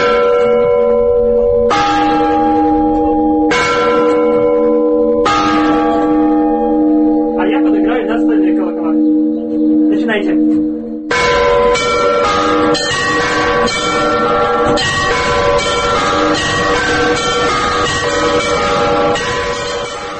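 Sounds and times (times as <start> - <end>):
large church bells rung by foot: 0.0 - 20.1.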